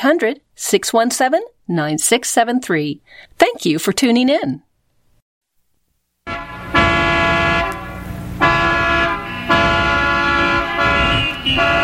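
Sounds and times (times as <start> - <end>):
speech: 0.0 - 4.7
car horns honking in a traffic jam: 6.2 - 11.8.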